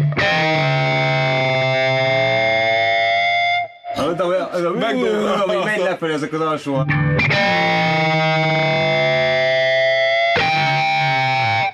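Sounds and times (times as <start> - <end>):
electric guitar chords through a tube amplifier: 0.0 - 4.2, 6.8 - 11.7
laughter: 4.1 - 6.2
speech: 4.2 - 9.0.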